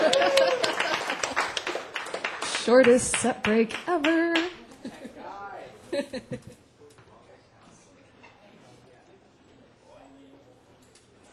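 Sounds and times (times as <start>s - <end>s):
laughter: 0.0s - 1.6s, 4.6s - 6.7s
audience of many hands clapping: 0.0s - 4.8s
speech: 2.6s - 4.2s.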